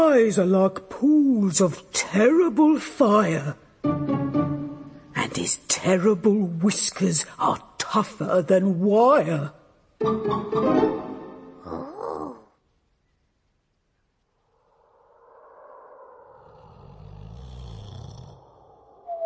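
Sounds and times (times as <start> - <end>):
speech: 0.2 - 3.6, 5.4 - 11.9
loud rough snoring: 16.4 - 18.8.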